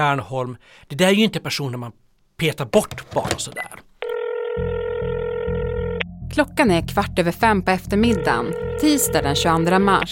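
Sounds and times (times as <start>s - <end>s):
speech: 0.0s - 3.9s, 6.3s - 10.0s
telephone line tone as shareholders dial into a conference call: 4.0s - 6.0s, 8.0s - 9.7s.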